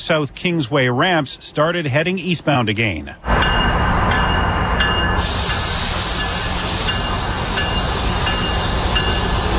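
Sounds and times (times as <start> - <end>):
speech: 0.0 - 3.7
GO commuter train rolling along Lakeshore West Line tracks in Toronto: 3.2 - 9.5.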